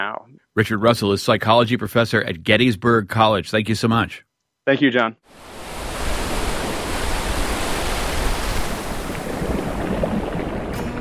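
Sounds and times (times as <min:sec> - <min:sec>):
speech: 0:00.0 - 0:05.5
ocean surf washing onto a shore: 0:05.3 - 0:10.9.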